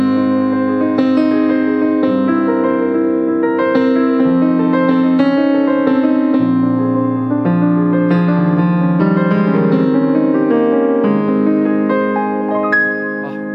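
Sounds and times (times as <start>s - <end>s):
slow romantic classical piano piece: 0.0s - 13.5s.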